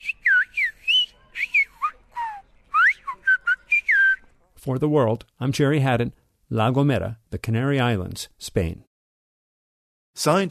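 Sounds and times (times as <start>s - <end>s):
person on La Gomera in the Canary Islands whistling a whistled language: 0.0s - 4.2s
speech: 4.7s - 8.9s, 10.2s - 10.4s.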